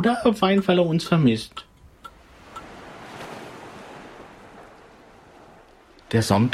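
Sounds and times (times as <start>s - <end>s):
speech: 0.0s - 1.7s, 6.1s - 6.5s
waves lapping at a harbor: 0.0s - 6.5s.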